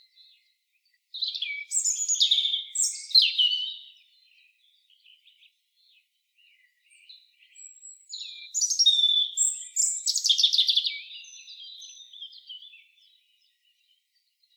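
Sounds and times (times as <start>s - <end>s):
European robin song, Erithacus rubecula: 0.1s - 5.6s, 6.4s - 14.0s.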